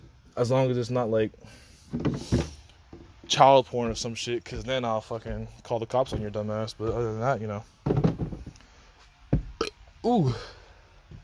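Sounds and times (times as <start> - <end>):
speech: 0.4 - 2.5, 3.3 - 8.1, 10.0 - 10.6
low rumbling burp: 9.5 - 9.9.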